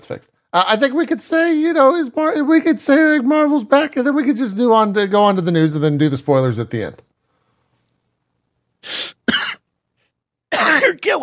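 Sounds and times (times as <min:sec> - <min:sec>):
speech: 0:00.1 - 0:07.1, 0:08.8 - 0:09.2, 0:10.5 - 0:11.2
person with a lingering cough coughing: 0:09.0 - 0:09.7, 0:10.5 - 0:11.1.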